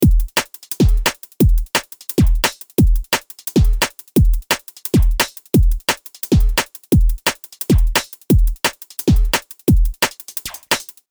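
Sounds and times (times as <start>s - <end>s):
drum and bass drum loop: 0.0s - 11.0s.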